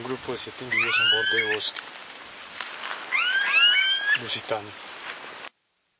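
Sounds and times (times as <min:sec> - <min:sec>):
speech: 0:00.0 - 0:02.1, 0:04.2 - 0:04.8
background hiss: 0:00.0 - 0:05.9
smooth-billed ani alarm call with rising whining whistles: 0:00.7 - 0:01.6, 0:03.1 - 0:04.4.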